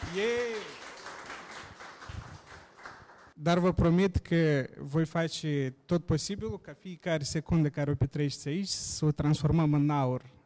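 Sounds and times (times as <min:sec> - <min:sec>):
person whooping or cheering: 0:00.0 - 0:00.8
audience applause: 0:00.0 - 0:03.3
speech: 0:00.1 - 0:00.8, 0:03.4 - 0:10.4.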